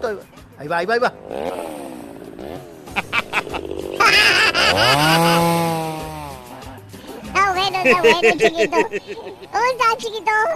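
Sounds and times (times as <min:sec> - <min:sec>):
speech: 0:00.0 - 0:01.8, 0:04.1 - 0:05.5, 0:07.8 - 0:10.5
small motorcycle engine revving and sputtering: 0:01.1 - 0:06.8
laughter: 0:02.9 - 0:09.7.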